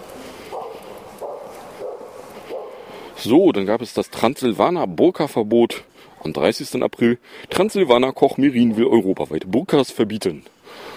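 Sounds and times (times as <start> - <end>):
steady low hiss: 0.0 - 10.9
dog breathing heavily with raspy breaths: 0.4 - 3.2
speech: 3.2 - 10.9.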